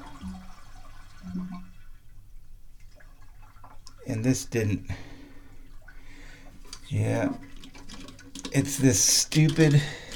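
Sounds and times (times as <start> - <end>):
toilet with plastic flapper chain flushing: 0.0 - 2.1, 4.9 - 10.1
speech: 4.1 - 5.1, 6.9 - 7.4, 8.6 - 10.0.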